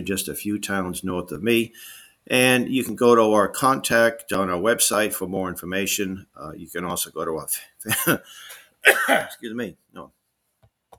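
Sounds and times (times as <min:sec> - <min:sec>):
speech: 0:00.0 - 0:10.2
person coughing: 0:08.8 - 0:09.4.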